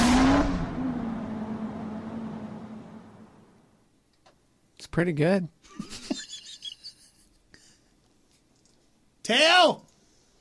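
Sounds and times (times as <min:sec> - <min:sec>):
car engine revving: 0:00.0 - 0:03.6
speech: 0:04.8 - 0:05.9, 0:09.3 - 0:09.8.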